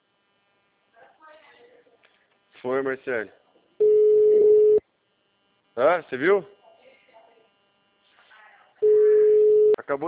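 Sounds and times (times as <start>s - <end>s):
speech: 2.6s - 3.4s, 5.8s - 6.6s, 9.9s - 10.0s
telephone call tone while a call is being placed: 3.8s - 4.8s, 8.8s - 9.8s.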